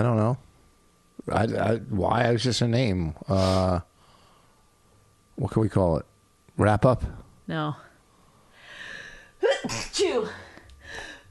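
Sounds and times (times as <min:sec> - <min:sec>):
speech: 0:01.2 - 0:03.9, 0:05.4 - 0:07.9
person sneezing: 0:09.4 - 0:10.2.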